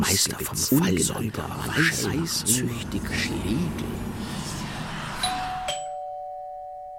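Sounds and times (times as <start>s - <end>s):
speech: 0.0s - 4.4s
two-tone doorbell chime: 5.2s - 6.9s.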